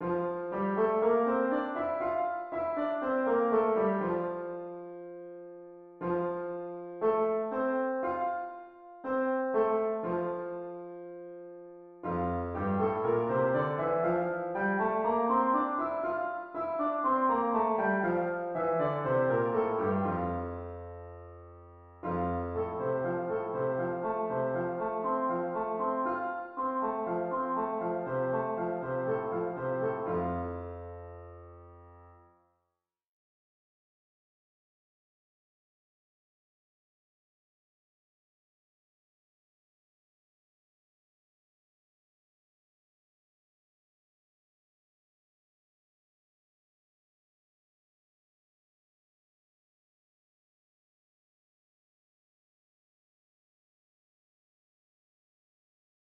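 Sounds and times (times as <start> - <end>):
piano playing in F major: 0.0 - 32.3.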